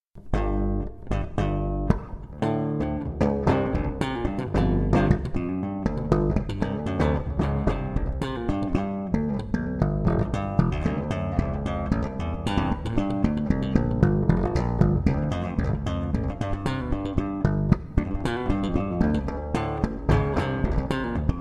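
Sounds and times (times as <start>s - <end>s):
slap bass ringtone: 0.2s - 21.3s.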